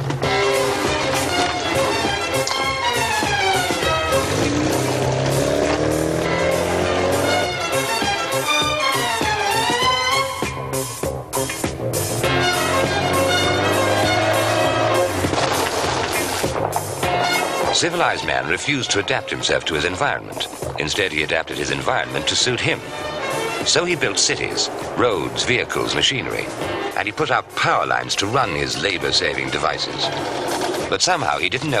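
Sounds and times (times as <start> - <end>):
car engine starting and revving: 0.1 - 9.8, 10.8 - 27.0
speech: 17.8 - 31.7.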